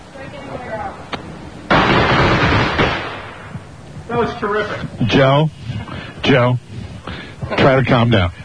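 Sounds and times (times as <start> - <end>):
firecrackers exploding after being lit: 1.7 - 3.7
speech: 4.2 - 5.6, 6.2 - 8.4.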